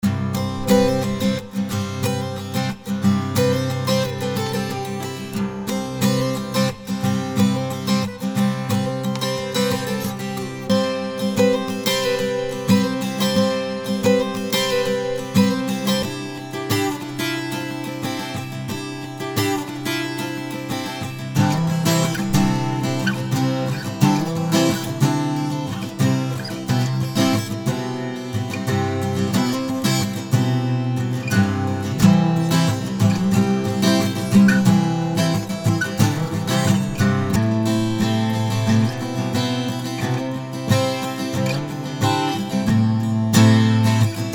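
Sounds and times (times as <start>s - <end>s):
acoustic guitar in open C tuning: 0.0s - 44.3s.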